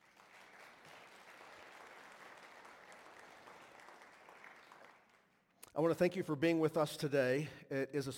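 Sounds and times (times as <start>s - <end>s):
large indoor church audience applauding: 0.0s - 5.6s
speech: 5.8s - 8.1s.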